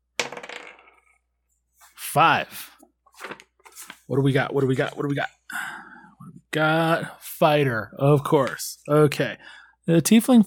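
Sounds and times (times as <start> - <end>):
small bone d12 die clattering onto a tabletop: 0.2 - 1.0
speech: 2.1 - 2.7, 4.1 - 5.4, 6.6 - 10.4.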